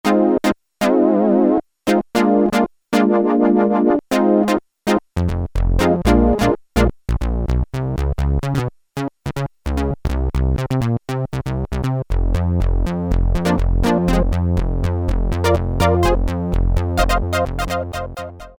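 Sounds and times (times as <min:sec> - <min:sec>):
plucked synth on Korg Poly-61M: 0:00.0 - 0:18.5.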